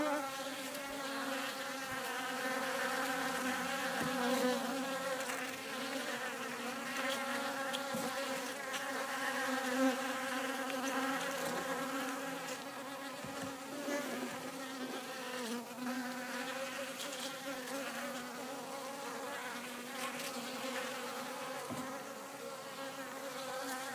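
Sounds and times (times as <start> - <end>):
swarm of bees buzzing: 0.0 - 23.9.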